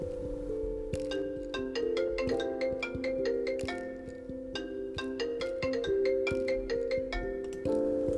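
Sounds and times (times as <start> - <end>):
phone ringtone while calling a friend: 1.1 - 8.0.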